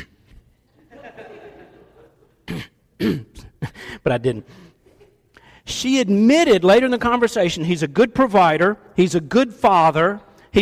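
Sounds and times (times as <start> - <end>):
laughter: 0.8 - 2.4
person imitating someone clearing their throat: 2.4 - 3.8
speech: 3.0 - 3.3, 4.0 - 4.7, 5.7 - 10.6.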